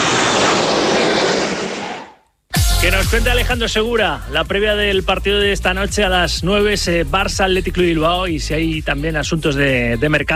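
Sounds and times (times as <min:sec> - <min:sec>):
airliner landing in Barcelona on the air shuttle route: 0:00.0 - 0:02.2
speech: 0:02.9 - 0:10.3.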